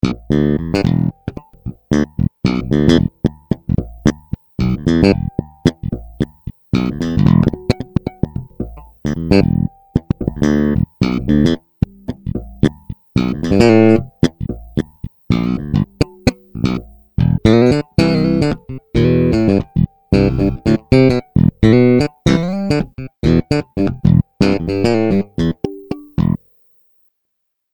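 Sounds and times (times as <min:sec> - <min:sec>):
bass test: 0:00.0 - 0:26.4.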